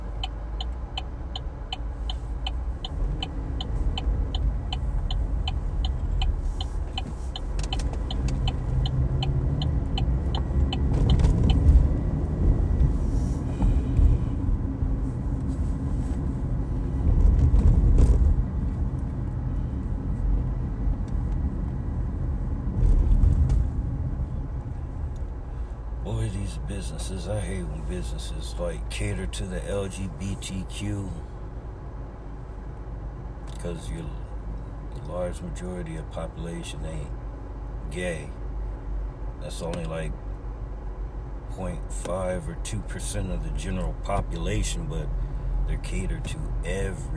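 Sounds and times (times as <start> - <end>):
turbocharged car engine rumbling and revving: 0.0 - 47.1
sharp ticking: 0.1 - 11.7
speech: 27.9 - 31.3, 33.6 - 34.2, 35.0 - 37.2, 37.9 - 38.4, 39.4 - 40.2, 41.6 - 47.1.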